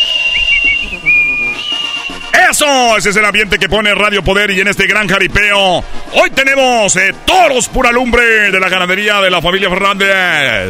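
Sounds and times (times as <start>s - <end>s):
crowd murmur: 0.0s - 2.3s, 5.7s - 8.0s
crowd of men whistling shrilly: 0.0s - 2.6s
speech: 2.6s - 10.6s.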